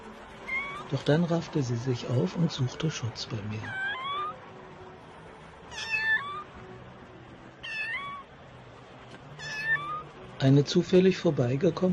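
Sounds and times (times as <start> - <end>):
small cat meowing: 0.4 - 0.9, 3.6 - 4.4, 5.7 - 6.5, 7.6 - 8.3, 9.4 - 10.1
speech: 0.9 - 4.0, 10.4 - 11.9.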